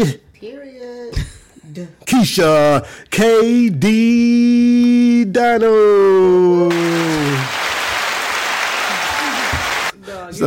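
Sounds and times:
speech: 0.0 - 0.2, 2.2 - 7.5
cheering whoop: 6.7 - 9.9
crowd applause: 6.7 - 10.0.

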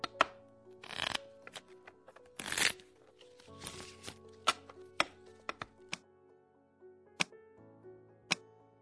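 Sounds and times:
tarot cards being shuffled: 0.0 - 6.0
soft low musical drone: 0.0 - 8.8.

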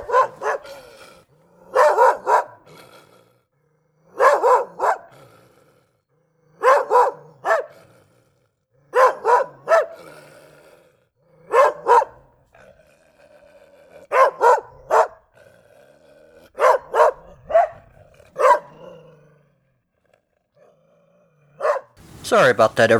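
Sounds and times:
dog barking: 0.0 - 2.8, 4.1 - 5.3, 6.6 - 7.9, 8.9 - 10.3, 11.4 - 12.8, 13.8 - 15.4, 16.4 - 19.1, 21.5 - 22.0
speech: 22.3 - 22.9.

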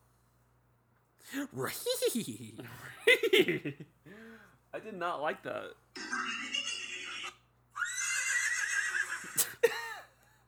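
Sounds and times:
speech: 1.3 - 6.6
horse neighing: 6.0 - 9.4.

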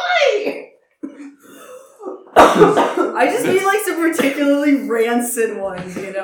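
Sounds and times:
speech: 0.4 - 0.7, 2.6 - 6.2
raspy cough with a throaty rattle: 2.4 - 4.7.

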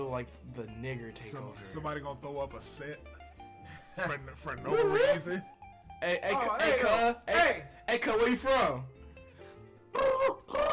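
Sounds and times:
speech: 0.0 - 9.0, 10.0 - 10.6
person imitating a bird call: 10.0 - 10.7.

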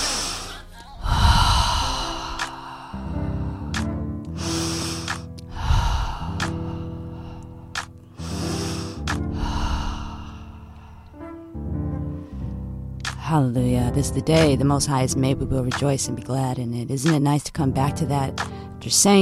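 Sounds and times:
sustained musical chords: 0.0 - 5.6, 6.5 - 15.6
deep breaths in through the nose and out through the mouth: 0.0 - 11.4
speech: 13.3 - 19.1.

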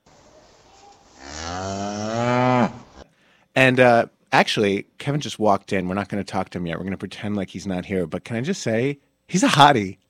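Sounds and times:
cow mooing: 1.2 - 3.0
speech: 3.6 - 10.0.

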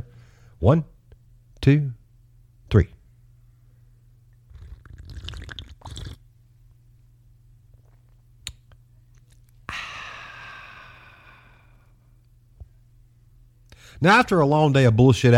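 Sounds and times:
speech: 0.6 - 0.9, 1.6 - 2.0, 2.7 - 3.0, 14.0 - 15.3
wet slurping sip of hot black coffee: 4.5 - 6.2
long breathy satisfied exhale: 9.7 - 12.0.

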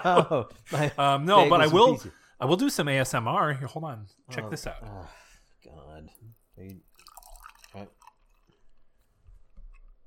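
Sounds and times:
speech: 0.0 - 6.9, 7.7 - 8.0
oat milk pouring into a mug: 6.2 - 9.1.

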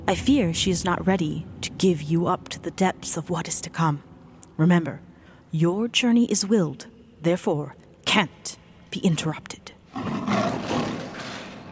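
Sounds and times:
speech: 0.1 - 10.5
lion roaring: 9.9 - 11.7.

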